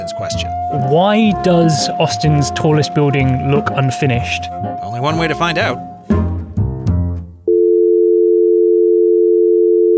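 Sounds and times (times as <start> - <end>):
speech: 0.1 - 6.3
steady single-pitch telephone line tone while calling an architecture firm: 7.5 - 9.9.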